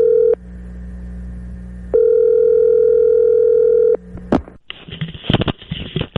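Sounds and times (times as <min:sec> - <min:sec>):
steady telephone dial tone: 0:00.0 - 0:00.4, 0:01.9 - 0:04.0.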